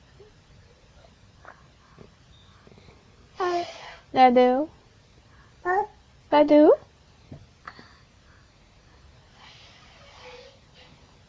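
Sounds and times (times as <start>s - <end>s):
speech: 3.6s - 4.8s, 5.6s - 6.8s
person blowing their nose: 9.4s - 10.9s.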